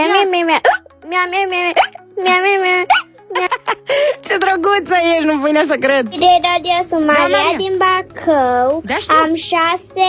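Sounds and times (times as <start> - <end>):
speech: 0.2 - 10.0
six-year-old girl singing with hiccups: 0.6 - 0.9, 1.6 - 3.1.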